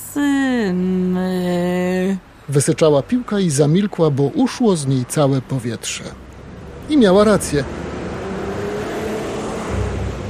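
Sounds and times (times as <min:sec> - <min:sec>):
speech: 0:00.1 - 0:01.4, 0:02.5 - 0:06.3, 0:06.9 - 0:07.9
heavy truck driving past: 0:04.6 - 0:10.2.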